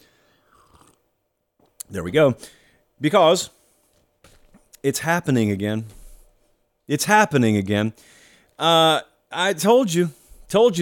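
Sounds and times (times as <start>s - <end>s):
sipping a drink from a chalice: 0.2s - 1.1s
speech: 1.9s - 3.6s, 4.8s - 6.0s, 6.9s - 10.8s.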